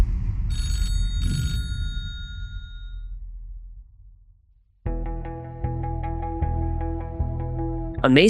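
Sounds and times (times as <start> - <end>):
payphone bell ringing: 0.5 - 3.0
steady music: 4.9 - 8.2
speech: 8.0 - 8.2.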